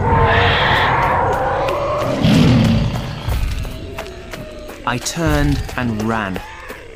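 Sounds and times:
meat-eating dinosaur roaring: 0.0s - 4.8s
speech: 4.9s - 6.5s.

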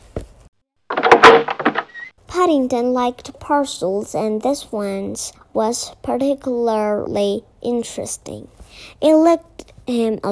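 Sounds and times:
bedroom door bumping shut with a soft thud: 0.9s - 2.1s
bedroom door lock rattling: 0.9s - 2.1s
speech: 2.4s - 10.2s.

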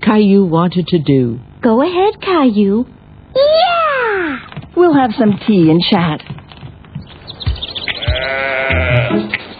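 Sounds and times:
speech: 0.1s - 6.4s
sheep bleating in wavering drawn-out cries: 7.9s - 9.3s.

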